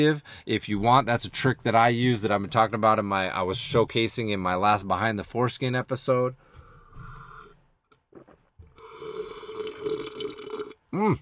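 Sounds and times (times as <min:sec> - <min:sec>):
speech: 0:00.0 - 0:07.1, 0:11.0 - 0:11.1
person sipping and swallowing water: 0:07.0 - 0:10.8.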